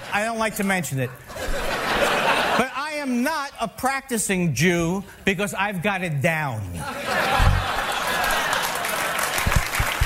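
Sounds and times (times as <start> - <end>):
speech: 0.1 - 2.0, 2.6 - 7.4
laughter: 1.0 - 3.2, 6.7 - 9.5
sharper thumps: 7.4 - 7.7
crowd of listeners applauding: 7.4 - 10.0.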